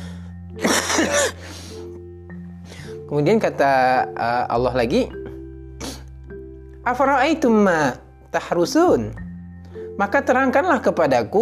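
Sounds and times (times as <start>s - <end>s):
throat clearing: 0.6s - 1.4s
person coughing: 0.6s - 1.5s
speech: 3.1s - 5.2s, 6.9s - 9.2s, 10.0s - 11.3s.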